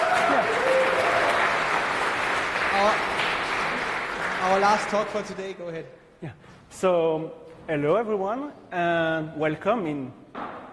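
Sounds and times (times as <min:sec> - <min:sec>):
conference audience applause: 0:00.0 - 0:05.5
speech: 0:04.5 - 0:10.2.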